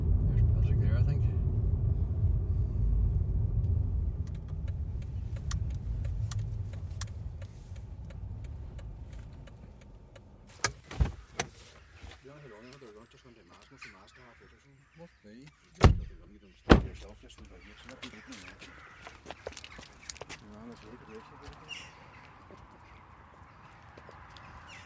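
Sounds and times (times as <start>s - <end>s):
car driving to a graveyard, engine and road rumble: 0.0s - 24.8s
sharp clicks: 4.3s - 10.8s.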